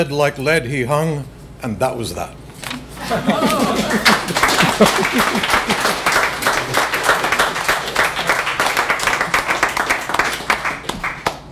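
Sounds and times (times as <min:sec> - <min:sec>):
speech: 0:00.0 - 0:02.4, 0:03.0 - 0:07.0
scattered laughter: 0:03.0 - 0:06.8
audience applauding after a poem: 0:03.0 - 0:11.5.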